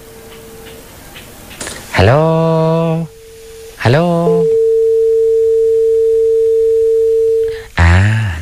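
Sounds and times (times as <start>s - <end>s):
speech: 2.0s - 3.1s, 3.9s - 4.2s
telephone busy tone after a caller's phone line drops: 3.1s - 7.5s.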